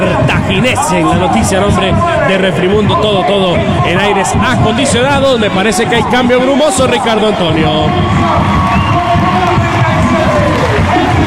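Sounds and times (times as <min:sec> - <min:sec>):
speech: 0:00.0 - 0:08.9
large stadium crowd roaring and cheering for entering player: 0:00.0 - 0:11.2
stadium crowd applause: 0:07.0 - 0:11.2.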